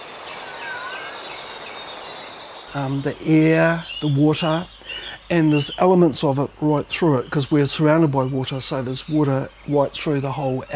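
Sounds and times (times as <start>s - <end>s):
cicadas chirping: 0.0s - 10.7s
speech: 2.7s - 10.7s.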